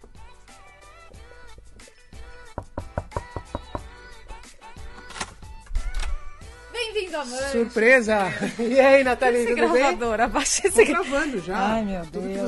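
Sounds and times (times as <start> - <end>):
knocking on a hotel room door: 2.6 - 3.9
lively voice: 6.6 - 12.4
speech: 7.1 - 12.4
laughter: 8.1 - 11.5.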